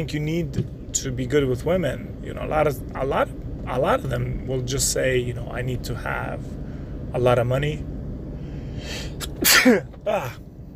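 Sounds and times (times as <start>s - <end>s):
speech: 0.0s - 7.9s, 8.8s - 10.5s
person sneezing: 8.9s - 10.4s.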